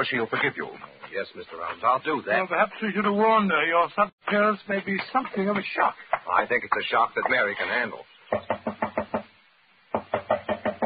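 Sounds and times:
speech: 0.0 - 8.5
firm knocking on a wooden door: 8.3 - 9.3, 9.9 - 10.8.

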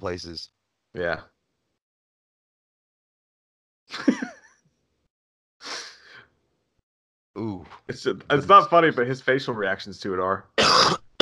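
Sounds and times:
speech: 0.0 - 1.4, 3.9 - 4.3, 7.4 - 11.2
hoarse coughs from a person with a lingering cough: 10.6 - 11.2.

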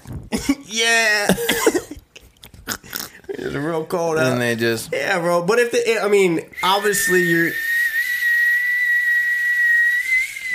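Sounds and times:
speech: 0.4 - 1.8, 3.6 - 7.6
high-pitched whistle imitating a tea kettle: 6.6 - 10.5.

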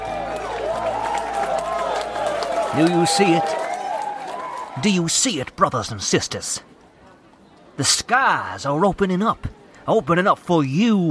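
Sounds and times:
dense crowd roaring and cheering: 0.0 - 5.1
scattered claps in a crowd: 0.0 - 5.7
speech: 2.7 - 3.6, 4.8 - 6.7, 7.8 - 11.0.

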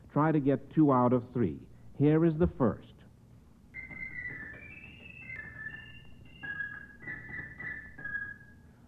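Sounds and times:
speech: 0.2 - 2.9
organ playing high warbling notes imitating a purple finch song: 3.8 - 8.7.

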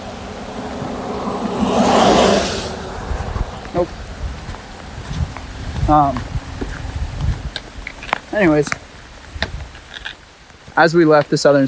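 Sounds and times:
car passing by on a road: 0.0 - 7.1
wind rumble: 0.0 - 10.7
low bumps: 0.0 - 10.8
speech: 5.9 - 6.3, 8.4 - 8.8, 10.8 - 11.6.

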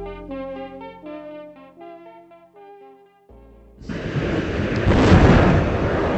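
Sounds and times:
rocket launching a satellite to study polar ice sheets into space: 3.8 - 6.1.

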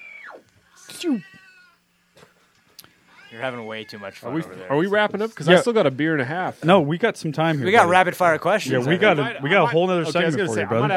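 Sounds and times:
speech: 1.0 - 1.4, 3.3 - 10.9
cat meowing: 1.1 - 1.8.

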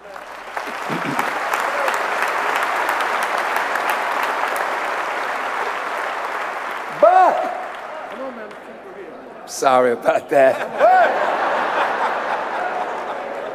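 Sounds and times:
sharp individual claps: 0.0 - 8.7
audience applause: 0.0 - 9.0, 10.8 - 13.5
laughter: 0.7 - 1.4, 10.2 - 13.5
speech: 9.6 - 11.2.

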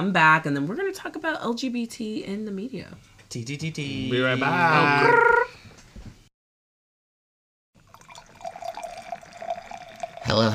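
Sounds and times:
speech: 0.0 - 5.7, 10.3 - 10.5
drinks poured into glasses: 7.8 - 10.5.

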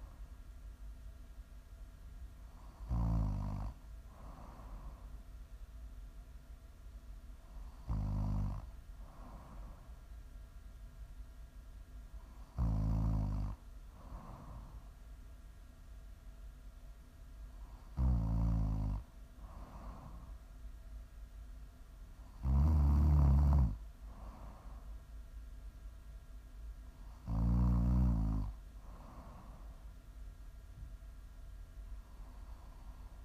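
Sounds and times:
faint steady hum: 0.0 - 33.2
person snoring: 2.8 - 5.0, 7.7 - 9.7, 12.6 - 14.7, 22.4 - 24.6, 27.2 - 29.6.

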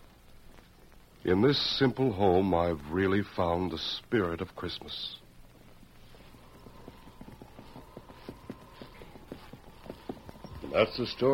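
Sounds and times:
horses' hooves clip-clopping at a walk as riders approach a house: 0.0 - 11.3
speech: 1.2 - 5.2, 10.8 - 11.3.

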